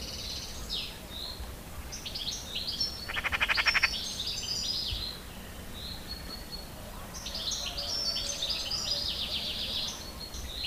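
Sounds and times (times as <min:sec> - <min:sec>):
small birds twittering thin high songs: 0:00.0 - 0:10.6
Eurasian magpie short harsh rattling chatter: 0:03.1 - 0:03.9.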